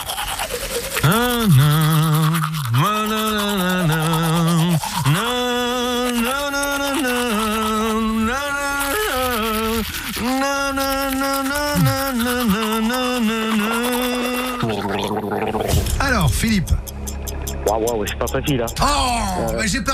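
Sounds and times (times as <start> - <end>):
toothbrush bristles scrubbing teeth: 0.0 - 18.8
person humming a song while brushing teeth: 0.9 - 15.6
speech: 17.8 - 19.9.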